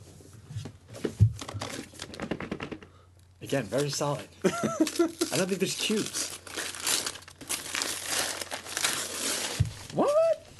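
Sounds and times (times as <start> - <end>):
speech: 3.5 - 6.4
plastic wrapping crinkling as a board game package is opened: 3.8 - 10.5.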